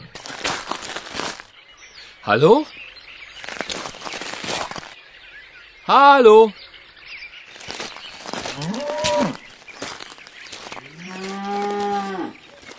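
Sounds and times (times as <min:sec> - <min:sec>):
speech: 0:02.3 - 0:02.8, 0:05.9 - 0:06.6
cow mooing: 0:08.6 - 0:09.4, 0:10.9 - 0:12.4.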